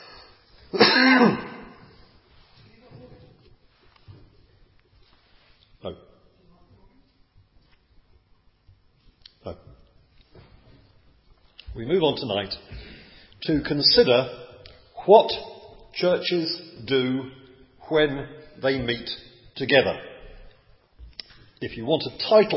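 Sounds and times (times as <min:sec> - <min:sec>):
loud cough: 0:00.7 - 0:01.8
throat clearing: 0:00.7 - 0:01.8
speech: 0:01.0 - 0:01.4, 0:12.2 - 0:12.8, 0:13.4 - 0:14.4, 0:15.1 - 0:20.1, 0:21.6 - 0:22.5.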